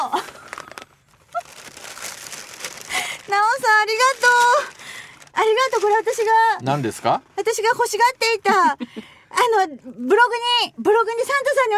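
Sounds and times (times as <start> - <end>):
paper packaging of a gift package crinkling and rustling as torn open: 0.0 - 7.2
speech: 5.4 - 11.7.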